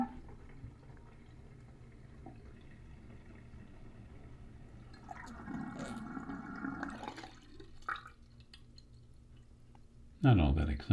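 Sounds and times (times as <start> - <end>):
water draining out of a sink: 0.0 - 9.7
speech: 10.2 - 10.9.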